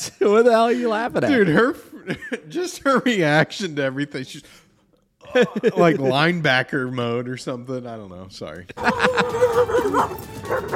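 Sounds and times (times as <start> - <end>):
laughter: 0.0 - 3.9, 5.2 - 6.4, 8.7 - 10.7
speech: 0.0 - 4.6, 5.2 - 10.7
overprotective Rottweiler barking and yipping: 8.8 - 10.7.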